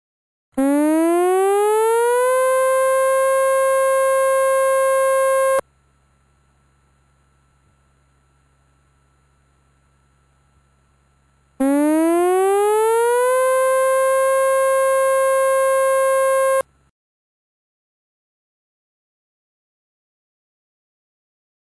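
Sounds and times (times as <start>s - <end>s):
tsunami warning siren wailing: 0.6s - 5.6s, 11.6s - 16.6s.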